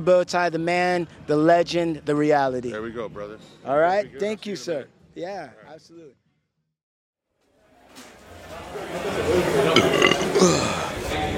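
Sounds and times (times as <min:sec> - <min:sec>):
speech: 0:00.0 - 0:06.2
long loud raspy gurgling belch: 0:09.7 - 0:10.9.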